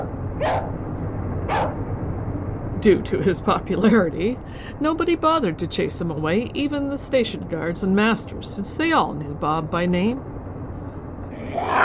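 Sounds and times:
dog barking: 0:00.0 - 0:00.8, 0:01.5 - 0:01.8
low rumble: 0:00.0 - 0:11.8
speech: 0:02.8 - 0:10.3.

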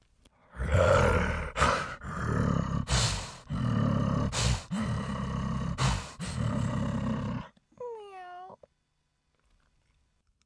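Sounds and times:
hungry tigers roaring and growling: 0:00.6 - 0:07.5.

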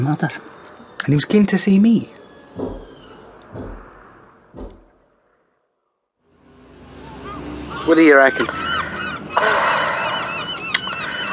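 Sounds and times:
speech: 0:00.0 - 0:02.8, 0:07.9 - 0:08.6
gulls squawking by a pier: 0:00.0 - 0:04.7, 0:06.9 - 0:11.3
sharp knocks: 0:02.5 - 0:05.4.

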